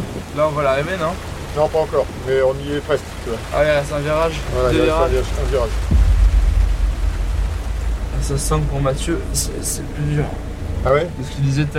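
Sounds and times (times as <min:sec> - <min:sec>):
heavy rain: 0:00.0 - 0:10.8
speech: 0:00.4 - 0:06.0, 0:08.2 - 0:11.7
deep thunder rumbling: 0:04.3 - 0:10.7.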